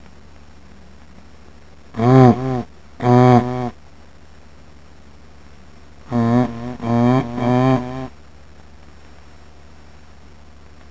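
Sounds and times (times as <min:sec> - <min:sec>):
low steady hum: 0:00.0 - 0:10.9
moose giving deep harmonic moaning calls: 0:02.0 - 0:03.8, 0:06.1 - 0:08.2.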